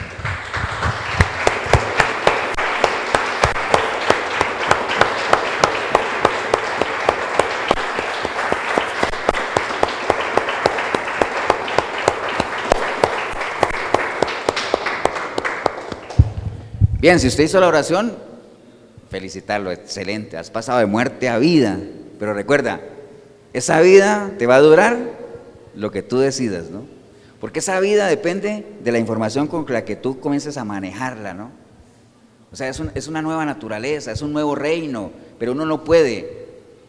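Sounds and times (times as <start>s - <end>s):
audience applauding: 0.0s - 16.4s
speech: 17.0s - 18.3s, 19.1s - 22.9s, 23.5s - 25.1s, 25.8s - 31.6s, 32.5s - 36.4s.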